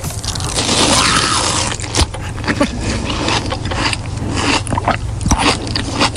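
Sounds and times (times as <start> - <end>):
biting and chewing juicy sliced summer melon: 0.0 - 6.1.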